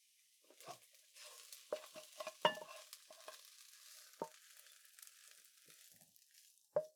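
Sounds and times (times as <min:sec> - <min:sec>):
soft sizzling hiss: 0:00.0 - 0:06.8
food scooped and served onto a plate for dinner: 0:00.5 - 0:06.5.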